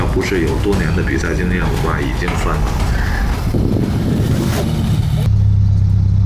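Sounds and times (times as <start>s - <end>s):
speech: 0.1s - 2.8s, 3.5s - 3.9s
car engine revving: 3.5s - 6.2s.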